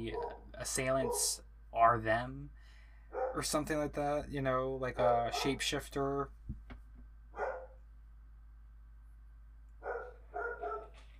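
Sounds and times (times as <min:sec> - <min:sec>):
speech: 0:00.0 - 0:06.6
low steady hum: 0:00.0 - 0:11.1
dog barking: 0:00.1 - 0:01.4, 0:03.1 - 0:03.4, 0:07.4 - 0:07.8, 0:09.8 - 0:11.0.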